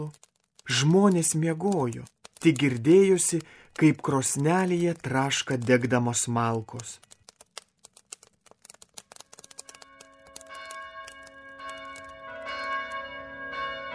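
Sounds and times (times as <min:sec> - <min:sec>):
speech: 0:00.0 - 0:07.1
church bells ringing on Christmas morning: 0:10.8 - 0:13.9.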